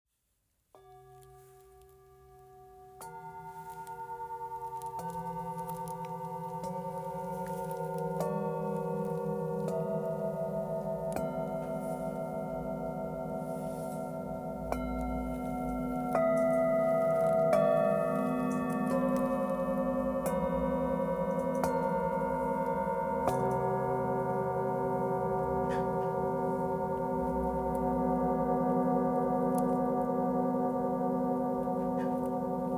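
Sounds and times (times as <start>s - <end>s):
set of 7 singing bowls for the 7 chakras: 0.7s - 32.7s.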